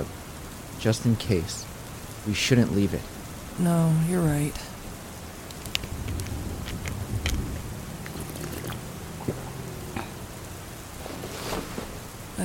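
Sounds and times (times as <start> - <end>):
steady rain: 0.0 - 12.4
speech: 0.8 - 4.7
drips and patters on hard surfaces: 5.4 - 10.4.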